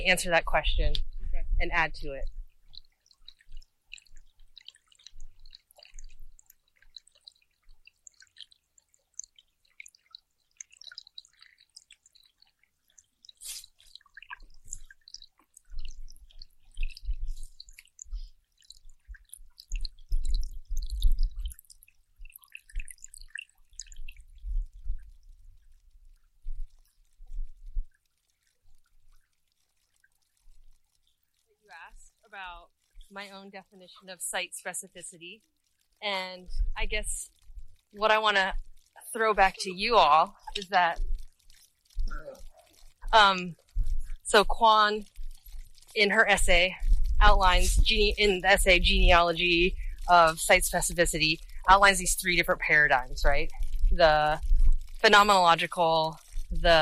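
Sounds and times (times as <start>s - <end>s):
speech: 0.0s - 2.4s, 32.4s - 41.1s, 43.1s - 43.6s, 44.3s - 45.1s, 46.0s - 56.8s
small bright water droplets dripping: 0.0s - 56.8s.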